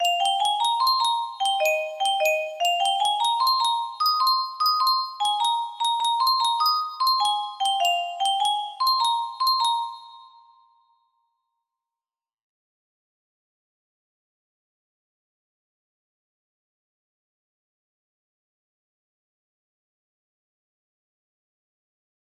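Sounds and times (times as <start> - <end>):
donation sound music box melody with reverb: 0.0 - 11.2.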